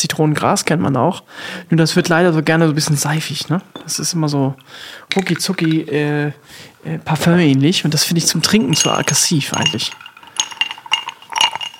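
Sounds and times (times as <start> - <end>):
speech: 0.0 - 10.1
drinking glasses clinking in a toast: 2.8 - 6.1, 7.9 - 11.7.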